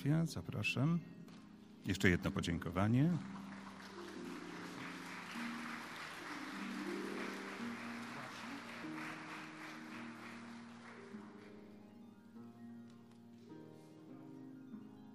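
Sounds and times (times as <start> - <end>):
speech: 0.0 - 1.2, 1.8 - 3.4
faint tonal music: 0.0 - 15.1
crowd applauding: 2.0 - 12.2.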